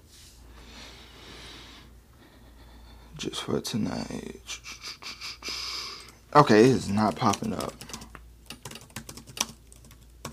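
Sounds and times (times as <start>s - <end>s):
speech: 3.2s - 4.8s, 6.3s - 7.9s
fast forceful typing on a computer keyboard: 6.0s - 10.3s.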